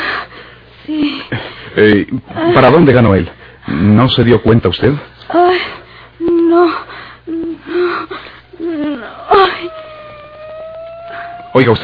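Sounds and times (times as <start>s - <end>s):
faint noise: 0.0s - 11.8s
speech: 0.9s - 5.8s, 11.6s - 11.8s
ambulance siren wailing: 9.7s - 11.8s.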